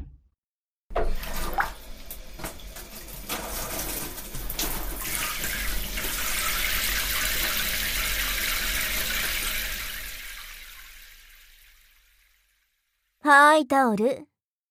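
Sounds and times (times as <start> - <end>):
shower spraying water: 1.0 - 12.7
speech: 13.3 - 14.3.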